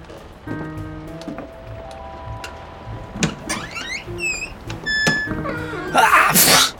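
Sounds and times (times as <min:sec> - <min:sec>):
old wardrobe door creaking open: 0:03.1 - 0:06.1.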